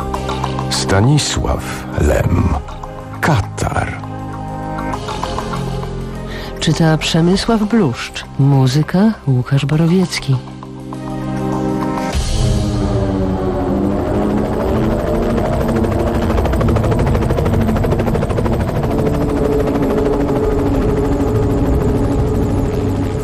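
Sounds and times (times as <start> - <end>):
helicopter flying overhead: 0.0 - 23.2
speech: 0.3 - 4.0, 6.6 - 10.5.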